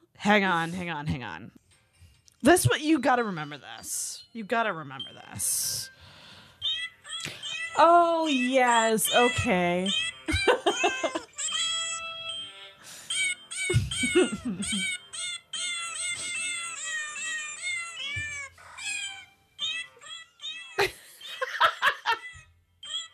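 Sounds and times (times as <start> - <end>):
speech: 0.3 - 1.6, 2.4 - 5.9, 7.3 - 11.3, 14.1 - 15.0
cat meowing: 6.7 - 7.8, 13.5 - 20.9, 22.0 - 23.1
people laughing: 10.3 - 11.3, 13.7 - 14.8, 20.8 - 22.4.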